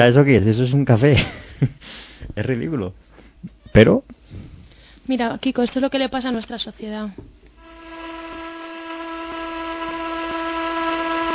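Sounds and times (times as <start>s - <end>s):
speech: 0.0s - 4.5s, 5.1s - 7.4s
ship's horn long steady blast: 7.6s - 11.3s.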